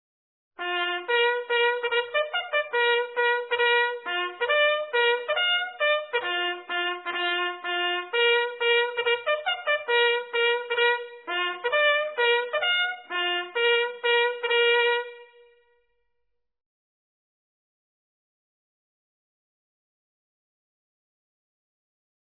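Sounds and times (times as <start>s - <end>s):
bugle call: 0.6s - 15.6s.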